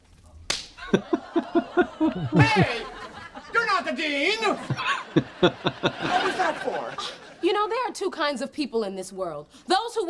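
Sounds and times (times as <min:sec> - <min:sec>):
sharp slap in the face: 0:00.5 - 0:00.8
laughter: 0:00.8 - 0:07.5
speech: 0:00.9 - 0:01.2, 0:01.8 - 0:02.8, 0:03.8 - 0:10.0.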